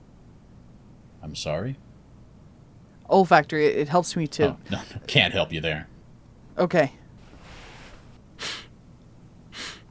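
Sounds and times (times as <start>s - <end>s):
low steady hiss: 0.0s - 9.9s
speech: 1.3s - 1.9s, 3.1s - 5.9s, 6.6s - 7.0s
sniffing inside a coat pocket: 7.3s - 8.7s, 9.6s - 9.8s.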